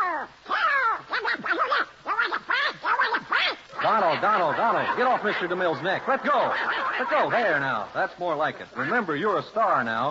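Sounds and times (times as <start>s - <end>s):
cartoon duck voice quacking and squawking: 0.0s - 4.9s
laughter: 3.8s - 8.0s
speech: 4.2s - 10.0s.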